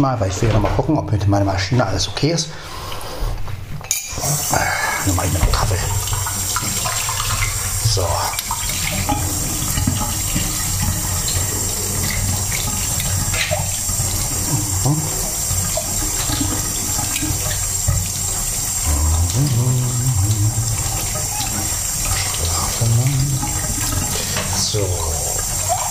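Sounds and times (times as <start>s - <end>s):
speech: 0.0s - 3.0s, 4.2s - 6.0s
water running from a tap as a cup is rinsed: 3.9s - 25.8s.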